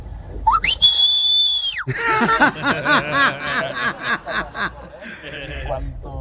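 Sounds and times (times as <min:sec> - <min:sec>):
loud sharp human whistle call summoning children home: 0:00.5 - 0:01.9
speech: 0:01.9 - 0:04.2
several people laughing and chuckling: 0:01.9 - 0:05.8.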